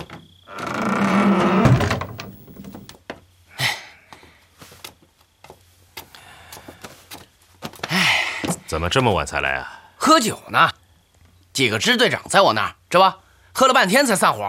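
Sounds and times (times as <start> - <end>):
door closing thud: 0.0 - 2.9
door swinging scrape: 0.5 - 2.9
speech: 8.7 - 10.8, 11.6 - 14.4.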